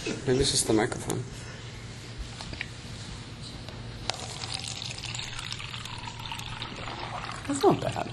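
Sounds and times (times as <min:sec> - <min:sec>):
speech: 0:00.3 - 0:01.5, 0:07.5 - 0:08.1
water poured from a jug: 0:04.1 - 0:08.1.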